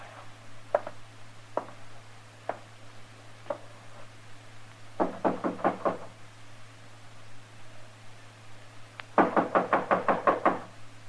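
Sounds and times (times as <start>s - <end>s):
low steady hum: 0.0s - 11.0s
knocking on a wooden door: 5.0s - 6.1s, 9.2s - 10.7s.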